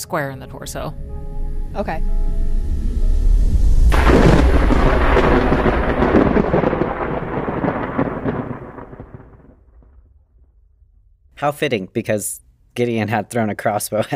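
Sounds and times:
speech: 0:00.1 - 0:02.3, 0:11.4 - 0:14.1
deep rolling thunder: 0:00.6 - 0:11.4
sharp loud lightning crack: 0:02.7 - 0:11.3.

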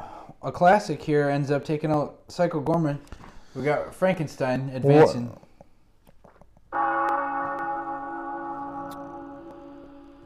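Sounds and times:
speech: 0:00.4 - 0:05.4
deep bell tolling: 0:06.7 - 0:10.2.

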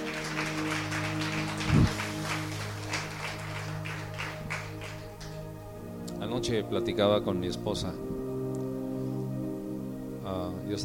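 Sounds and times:
audience applauding: 0:00.0 - 0:05.5
sustained low musical drone: 0:00.0 - 0:10.8
speech: 0:06.3 - 0:08.2.

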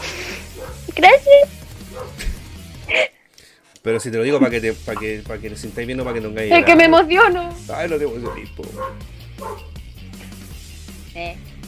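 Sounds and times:
dog next door barking: 0:00.0 - 0:00.9, 0:01.8 - 0:02.3, 0:03.9 - 0:04.1, 0:08.2 - 0:09.8
speech: 0:03.8 - 0:09.7, 0:11.2 - 0:11.5.

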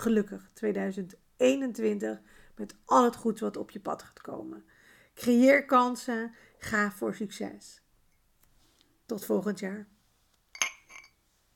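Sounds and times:
speech: 0:00.0 - 0:07.8, 0:09.1 - 0:09.9
glasses clinking in a New Year toast: 0:10.5 - 0:11.2.

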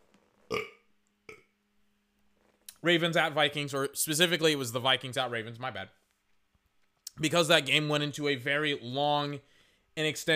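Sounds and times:
burps close to the mic: 0:00.5 - 0:01.6
speech: 0:02.8 - 0:06.0, 0:07.2 - 0:10.3.

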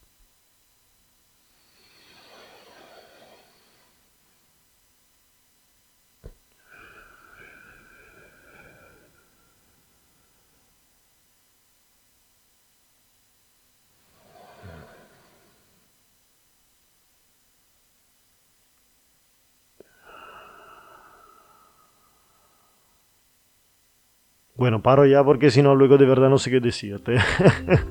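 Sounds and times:
slow deliberate breathing as a calming breathing exercise: 0:01.4 - 0:04.5, 0:06.2 - 0:10.8, 0:14.0 - 0:16.0, 0:19.8 - 0:23.2
speech: 0:24.6 - 0:27.8
laughter: 0:27.0 - 0:27.8.

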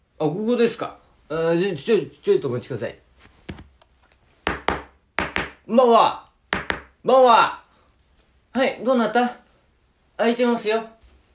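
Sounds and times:
speech: 0:00.2 - 0:03.0, 0:05.7 - 0:06.2, 0:07.0 - 0:07.6, 0:08.5 - 0:09.4, 0:10.2 - 0:11.0
knocking on the wooden door of a house: 0:04.5 - 0:05.6, 0:06.5 - 0:07.0.

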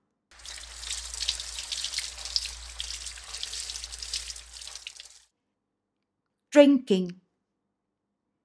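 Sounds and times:
water running while washing a car: 0:00.3 - 0:05.3
speech: 0:06.6 - 0:07.2.

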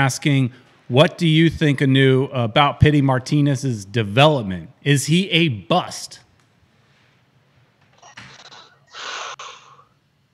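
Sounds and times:
speech: 0:00.0 - 0:06.2
heavy breathing close to the mic: 0:08.0 - 0:10.0.

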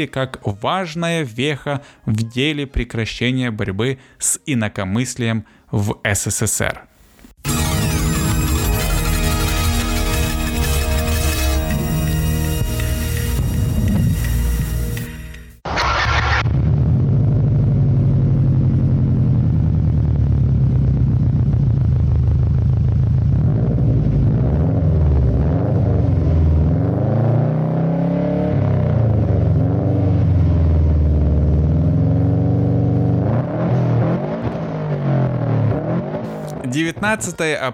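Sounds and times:
speech: 0:00.0 - 0:08.0, 0:37.1 - 0:37.7
Soviet VAZ-2101 Zhiguli sedan engine rumbling and revving: 0:07.5 - 0:36.8.

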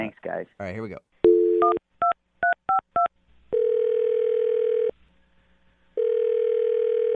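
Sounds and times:
speech: 0:00.1 - 0:01.8
long steady telephone ringback tone: 0:03.5 - 0:04.9, 0:06.0 - 0:07.1.

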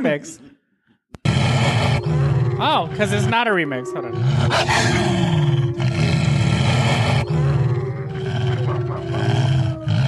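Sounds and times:
speech: 0:00.0 - 0:00.5, 0:01.6 - 0:05.6
wolf giving rough sustained cries and growling: 0:01.2 - 0:10.0.

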